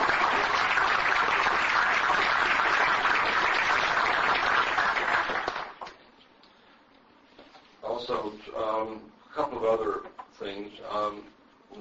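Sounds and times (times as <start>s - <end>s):
room full of people applauding a new staff member: 0.0s - 6.1s
speech: 8.9s - 11.7s.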